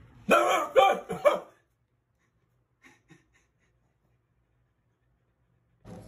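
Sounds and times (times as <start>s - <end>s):
person imitating a dog barking: 0.3s - 1.6s.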